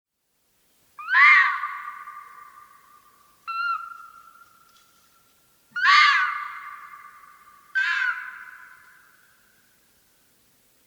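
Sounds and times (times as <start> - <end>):
red fox screaming: 1.0 - 2.6, 5.8 - 7.1, 7.8 - 8.7.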